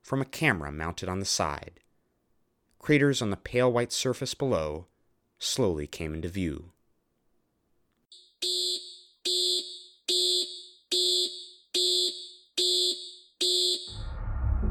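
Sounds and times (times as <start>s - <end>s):
speech: 0.1s - 1.8s, 2.8s - 6.8s, 8.4s - 8.7s
lunar module computer alarm electronic beeps during the moon landing: 8.1s - 14.1s.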